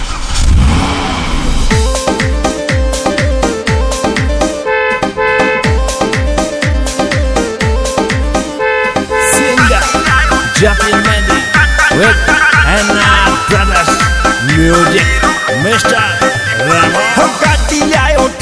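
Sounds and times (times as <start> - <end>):
car engine revving: 0.0 - 2.6
punchy song with a steady driving drum beat and bright melodic lines: 1.7 - 18.4.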